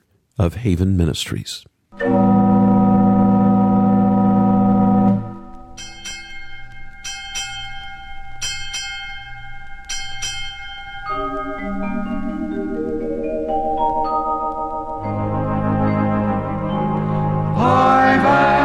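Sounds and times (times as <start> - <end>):
speech: 0.4 - 2.4
deep sustained theater organ tone: 2.0 - 8.4, 11.0 - 18.6
ship's bell struck in pairs: 2.4 - 15.3.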